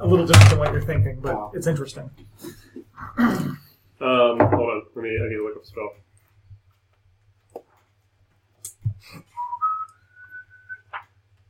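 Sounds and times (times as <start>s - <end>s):
scattered clicks and knocks: 0.0s - 1.5s
low steady hum: 0.0s - 2.4s
speech: 0.1s - 2.6s, 3.2s - 6.1s
person whistling a brief clear tune: 9.2s - 10.9s.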